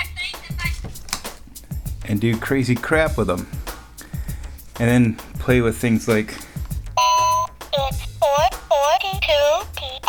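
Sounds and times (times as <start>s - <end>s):
speech: 2.1s - 3.6s, 4.8s - 6.4s
short electronic beep: 7.0s - 7.5s
high synthetic-sounding voice speaking in choppy bursts: 7.7s - 10.0s.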